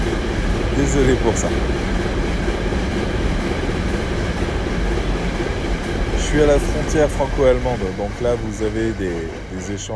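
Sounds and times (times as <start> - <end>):
train passing on rails behind the town hall at the French-German border: 0.0 - 9.9
speech: 0.8 - 2.1, 6.3 - 9.9.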